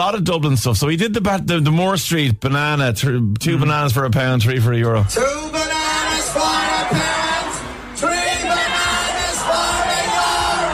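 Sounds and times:
speech: 0:00.0 - 0:05.7
large concert crowd singing along: 0:05.2 - 0:10.7.

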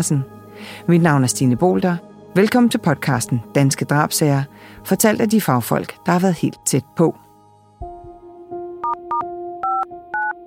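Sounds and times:
speech: 0:00.0 - 0:07.2
telephone dial tone: 0:08.8 - 0:10.3.

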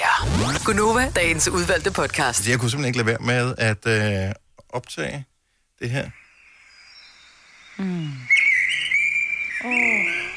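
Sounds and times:
speech: 0:00.6 - 0:06.2, 0:07.8 - 0:08.3, 0:09.6 - 0:10.0
blackbird in Frederiksberg singing loudly: 0:06.9 - 0:10.3
lower falling voice-like calls: 0:07.8 - 0:10.3.

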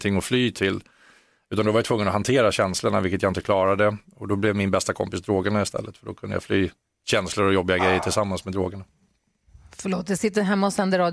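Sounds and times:
speech: 0:00.0 - 0:00.9, 0:01.5 - 0:09.0, 0:09.7 - 0:11.1
dog barking: 0:07.8 - 0:08.3.

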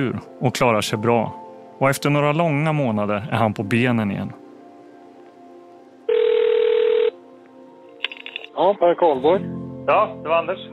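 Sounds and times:
speech: 0:00.0 - 0:04.4, 0:08.6 - 0:10.7
telephone ringing with an electronic burst: 0:06.1 - 0:07.2.

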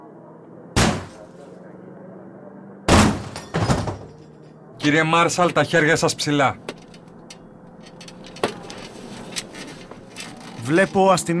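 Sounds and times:
door being battered down with heavy booming blows: 0:02.9 - 0:04.1
low hum: 0:02.9 - 0:11.3
speech: 0:04.8 - 0:06.7, 0:10.7 - 0:11.3.

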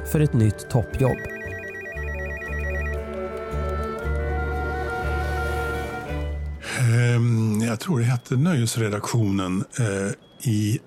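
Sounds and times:
speech: 0:00.0 - 0:01.6, 0:07.2 - 0:10.8
steady musical bed: 0:00.0 - 0:06.7
telephone ringing with an electronic warbling tone: 0:01.0 - 0:03.2.

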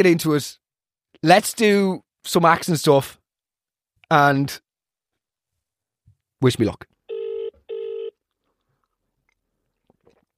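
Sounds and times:
speech: 0:00.0 - 0:00.6, 0:01.2 - 0:03.2, 0:04.1 - 0:04.6, 0:06.4 - 0:06.9
telephone ringing with electronic tone bursts: 0:07.1 - 0:08.2.

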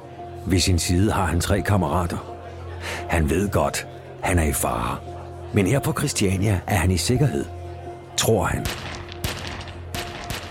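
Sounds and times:
speech: 0:00.4 - 0:07.6, 0:08.2 - 0:08.9
9mm pistol gunshots: 0:08.6 - 0:10.4.

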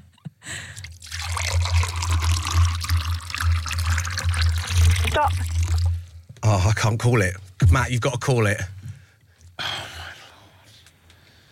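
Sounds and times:
liquid pouring steadily into a container: 0:00.8 - 0:06.2
speech: 0:06.5 - 0:08.8.

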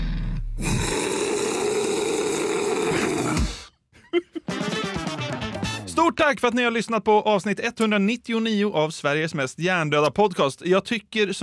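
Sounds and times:
person roaring gutturally: 0:00.0 - 0:03.7
music: 0:04.4 - 0:06.2
speech: 0:06.1 - 0:11.4.

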